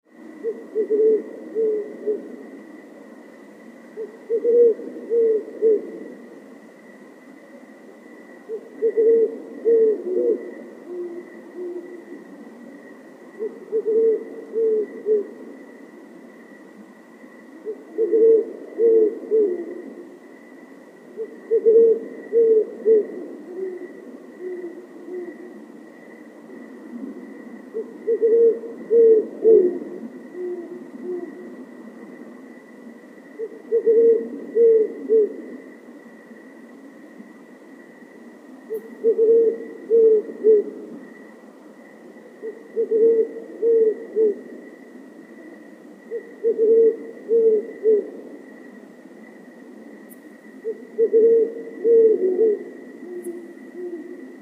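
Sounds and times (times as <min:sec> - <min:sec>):
great horned owl call: 0:00.2 - 0:02.4, 0:04.0 - 0:06.2, 0:08.5 - 0:12.2, 0:13.4 - 0:15.4, 0:17.5 - 0:20.0, 0:21.1 - 0:25.6, 0:26.9 - 0:31.6, 0:33.4 - 0:35.6, 0:38.6 - 0:40.9, 0:42.3 - 0:44.5, 0:46.1 - 0:48.2, 0:50.6 - 0:54.4.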